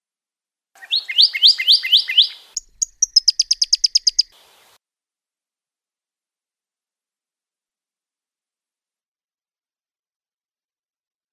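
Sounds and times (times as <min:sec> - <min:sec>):
Pyrrhuloxia trill: 0:00.8 - 0:04.8.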